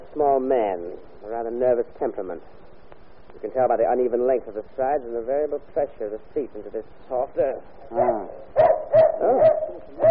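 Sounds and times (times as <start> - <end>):
speech: 0.2 - 2.7, 3.3 - 10.0
dog barking: 8.0 - 10.0.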